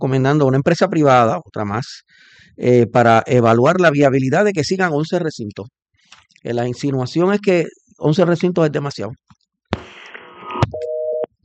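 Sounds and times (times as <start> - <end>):
speech: 0.0 - 9.3
phone line beep after a dropped call: 10.2 - 11.3.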